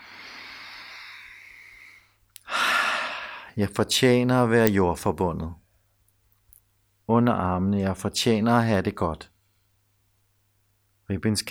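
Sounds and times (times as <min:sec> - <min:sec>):
deep breath in through the mouth and forceful exhale: 0:00.0 - 0:03.6
speech: 0:03.6 - 0:05.6, 0:07.1 - 0:09.3, 0:11.1 - 0:11.4.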